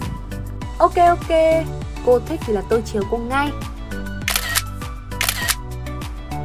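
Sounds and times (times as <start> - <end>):
speech: 0.8 - 3.7
camera shutter clicks taking photos from the front of a boat in Ha Long Bay, Vietnam: 4.3 - 5.6.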